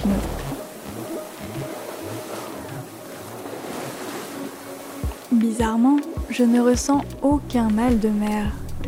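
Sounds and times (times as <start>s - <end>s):
waves and spray rushing around a heeling sailboat in strong wind and fine rain: 0.0s - 7.1s
speech: 5.4s - 8.6s.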